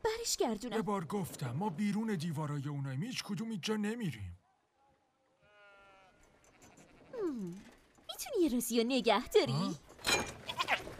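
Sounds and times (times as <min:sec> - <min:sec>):
speech: 0:00.2 - 0:04.4, 0:07.3 - 0:10.3
sheep bleating: 0:05.4 - 0:07.4, 0:10.5 - 0:10.9.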